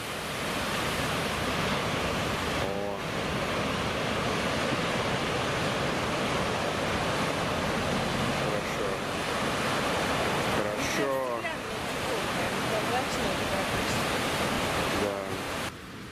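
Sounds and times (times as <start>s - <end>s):
ocean waves crashing onto the shore: 0.0s - 16.0s.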